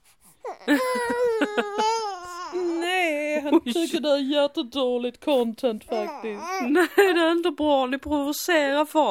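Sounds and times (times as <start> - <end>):
baby boy wailing loudly into the microphone: 0.4 - 3.1, 5.9 - 6.9
speech: 0.7 - 1.9, 3.5 - 9.0
laughter: 0.7 - 2.1.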